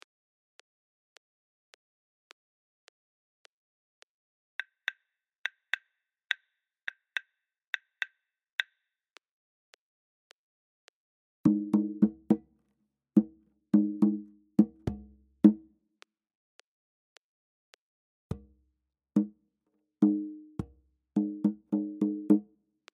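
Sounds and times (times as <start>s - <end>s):
African rhythms at 105 bpm: 11.5s - 12.5s, 13.2s - 15.6s, 19.2s - 19.4s, 20.0s - 22.5s.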